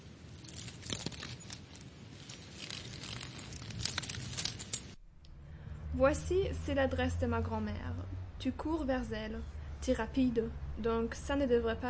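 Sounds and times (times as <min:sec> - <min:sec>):
paper rustling and crinkling as someone rummages through a pocket: 0:00.3 - 0:05.0
speech: 0:06.0 - 0:11.8.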